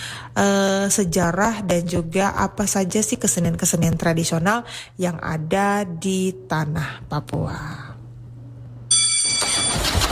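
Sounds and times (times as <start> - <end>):
speech: 0.4 - 7.9
new 2019 motorcycle engine starting: 9.3 - 10.1.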